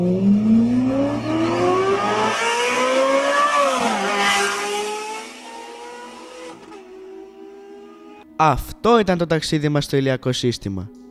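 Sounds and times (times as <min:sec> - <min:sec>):
Ferrari Formula 1 racing car speeding past: 0:00.0 - 0:08.2
speech: 0:08.4 - 0:11.0.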